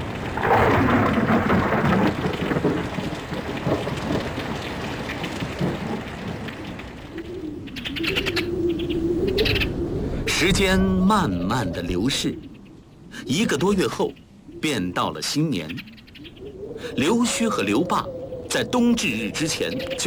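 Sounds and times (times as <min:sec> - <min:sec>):
rolling thunder outside a palace hall: 0:00.0 - 0:15.3, 0:16.0 - 0:20.0
steady downpour of heavy rain: 0:00.0 - 0:15.6, 0:16.5 - 0:20.0
speech: 0:10.5 - 0:12.5, 0:13.3 - 0:15.9, 0:17.0 - 0:20.0.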